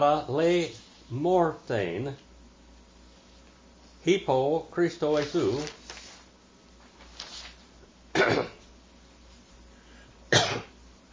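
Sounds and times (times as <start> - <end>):
speech: 0.0 - 2.3, 4.0 - 5.8
person coughing harshly after inhaling propane into the lungs: 8.1 - 8.6, 10.3 - 10.8
soft throat-clearing rasp: 8.2 - 8.6.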